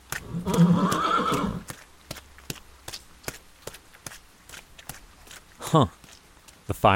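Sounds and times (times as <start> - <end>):
hoof clops on hard ground as a general rides out onto a field: 0.0 - 6.7
horse whinnying: 0.2 - 1.7
speech: 5.7 - 6.0, 6.8 - 6.9.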